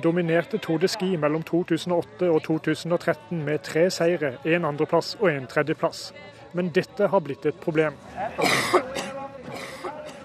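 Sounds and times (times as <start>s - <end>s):
speech: 0.0s - 9.1s
harsh raspy coughs: 8.4s - 10.1s
throat clearing: 8.4s - 10.2s.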